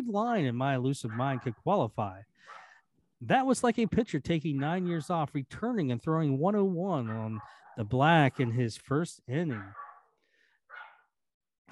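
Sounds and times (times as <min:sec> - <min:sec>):
speech: 0:00.1 - 0:02.6, 0:03.2 - 0:09.8
dog barking: 0:01.1 - 0:01.6, 0:02.5 - 0:02.8, 0:04.6 - 0:05.2, 0:07.0 - 0:08.7, 0:09.4 - 0:11.1.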